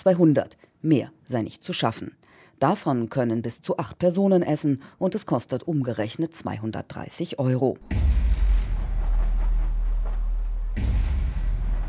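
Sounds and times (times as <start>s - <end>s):
speech: 0.0s - 8.3s
firecrackers crackling and booming at a New Year celebration: 7.9s - 11.8s.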